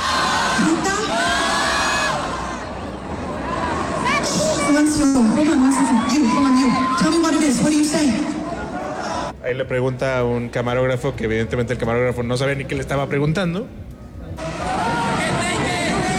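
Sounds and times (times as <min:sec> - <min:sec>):
large crowd shouting and cheering: 0:00.0 - 0:09.4, 0:14.4 - 0:16.1
speech: 0:09.5 - 0:13.8.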